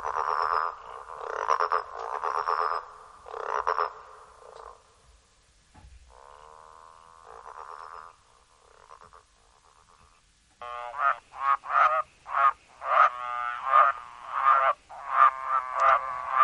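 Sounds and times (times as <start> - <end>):
growling grass frog calling: 0.0 - 4.9, 6.1 - 16.4.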